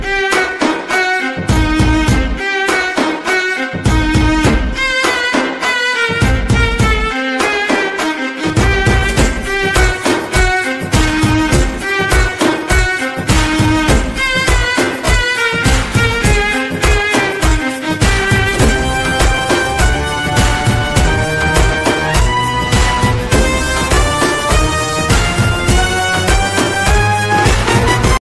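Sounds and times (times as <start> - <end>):
background music ringtone: 0.1 - 28.2.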